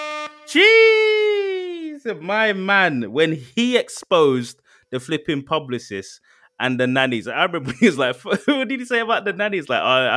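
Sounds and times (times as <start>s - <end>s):
air horn blasts: 0.0s - 0.8s
speech: 0.5s - 0.9s, 2.0s - 10.1s.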